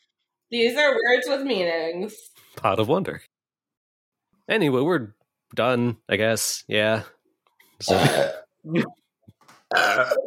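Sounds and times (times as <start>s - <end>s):
speech: 0.5s - 3.3s, 4.5s - 7.2s, 7.8s - 9.0s, 9.7s - 10.2s
loud drawn-out burp into a microphone: 7.8s - 9.0s, 9.7s - 10.2s.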